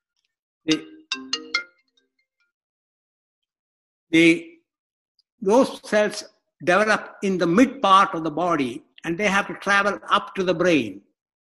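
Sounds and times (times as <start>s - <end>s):
speech: 0.6s - 0.9s, 4.1s - 4.5s, 5.4s - 11.1s
phone ringtone for an incoming call: 0.7s - 2.0s.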